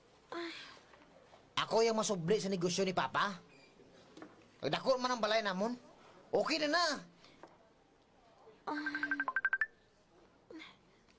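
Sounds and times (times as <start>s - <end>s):
speech: 1.6s - 3.5s, 4.6s - 7.1s
cellphone ringtone with bright electronic melody: 8.8s - 9.7s.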